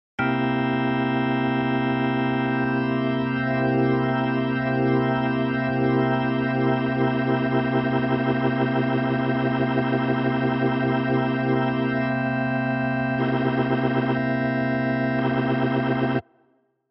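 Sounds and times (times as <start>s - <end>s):
organ rotor: 0.2s - 16.2s.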